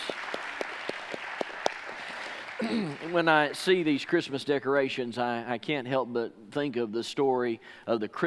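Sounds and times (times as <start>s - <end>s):
roomful of people clapping: 0.0s - 4.5s
speech: 2.6s - 8.2s.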